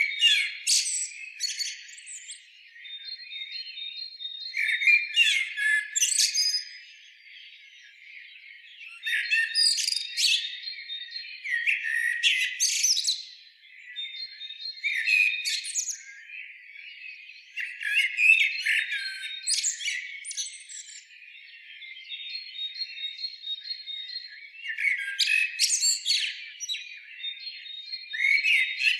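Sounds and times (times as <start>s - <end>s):
common blackbird Turdus merula singing: 0.0s - 28.9s.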